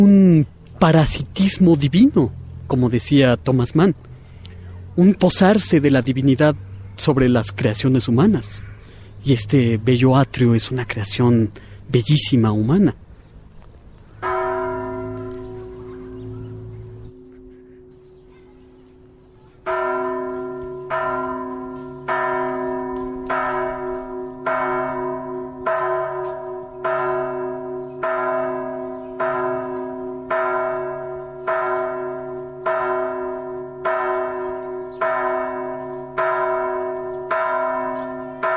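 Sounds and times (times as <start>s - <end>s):
speech: 0.0s - 4.1s, 5.0s - 13.0s
church bells ringing: 5.0s - 11.2s, 14.2s - 38.5s.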